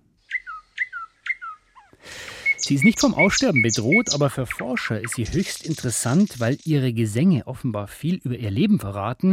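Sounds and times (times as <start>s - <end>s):
nightingale singing: 0.2s - 7.0s
speech: 2.7s - 9.3s.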